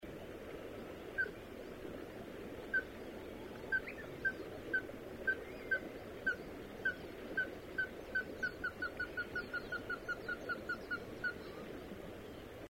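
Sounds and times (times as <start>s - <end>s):
soft background hiss: 0.1s - 12.6s
ruddy-breasted crake calling: 3.6s - 11.6s.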